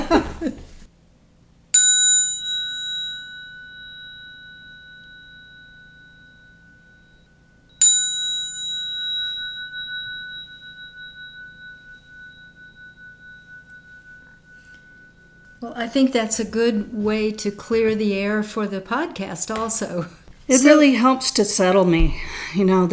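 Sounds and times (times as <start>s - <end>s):
laughter: 0.0s - 0.8s
bell ringing: 1.8s - 16.6s
speech: 15.8s - 22.9s.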